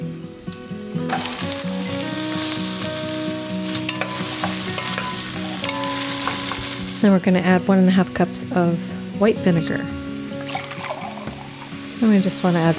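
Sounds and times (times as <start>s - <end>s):
carrots sizzling in a pan of frying onions and garlic: 0.0s - 12.7s
stirring scraping and clattering in a pan: 1.0s - 7.1s
speech: 7.0s - 10.0s, 12.0s - 12.7s.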